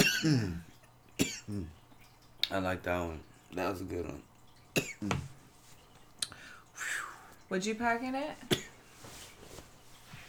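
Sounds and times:
rough cough after smoking: 0:00.0 - 0:00.6, 0:01.2 - 0:01.7, 0:04.8 - 0:05.3, 0:08.5 - 0:08.8
speech: 0:00.2 - 0:01.8, 0:02.5 - 0:05.3, 0:07.5 - 0:08.7.

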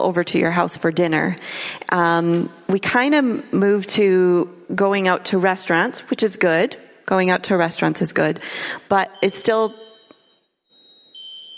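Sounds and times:
speech: 0:00.0 - 0:09.9
smoke detector fire alarm electronic tone: 0:08.9 - 0:11.5.

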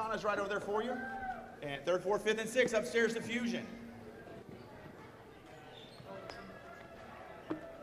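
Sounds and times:
speech: 0:00.0 - 0:03.8
many small children chattering: 0:03.7 - 0:07.8.

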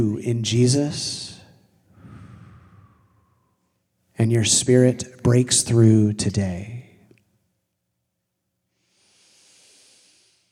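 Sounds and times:
speech: 0:00.0 - 0:01.3, 0:04.2 - 0:06.8
deep breath in during a guided prayer: 0:01.9 - 0:03.7, 0:08.7 - 0:10.5.

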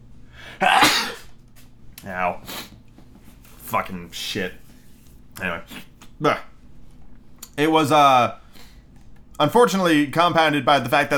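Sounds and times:
person sneezing: 0:00.5 - 0:01.4, 0:02.4 - 0:02.8
speech: 0:03.7 - 0:04.6, 0:05.4 - 0:06.5, 0:07.6 - 0:08.4, 0:09.4 - 0:11.1.

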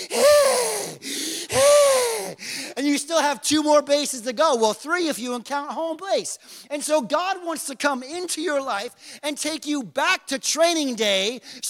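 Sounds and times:
voice imitating wheezy out-of-breath panting: 0:00.0 - 0:02.8
speech: 0:03.2 - 0:11.6.

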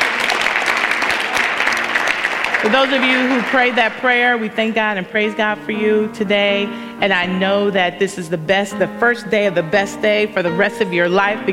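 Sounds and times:
church congregation clapping in praise after a prayer: 0:00.0 - 0:04.6
speech: 0:02.6 - 0:11.5.

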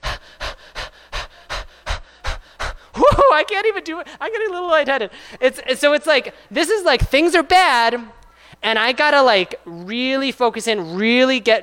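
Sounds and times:
rapid rhythmic breathing with forceful exhales in a fast breathing exercise: 0:00.0 - 0:03.0, 0:05.1 - 0:05.4, 0:06.2 - 0:06.6
speech: 0:03.4 - 0:11.6.

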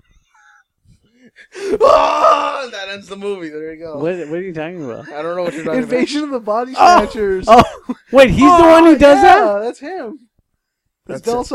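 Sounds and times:
speech: 0:01.2 - 0:10.3, 0:11.1 - 0:11.5
person imitating a loud open-mouthed movie scream: 0:01.6 - 0:02.8, 0:08.4 - 0:09.6.

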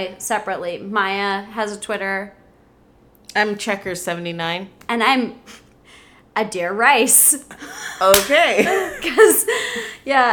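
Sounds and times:
speech: 0:00.0 - 0:02.4, 0:03.3 - 0:05.6, 0:06.4 - 0:10.3
person laughing: 0:07.6 - 0:10.0
hands slapping legs: 0:08.1 - 0:08.4.

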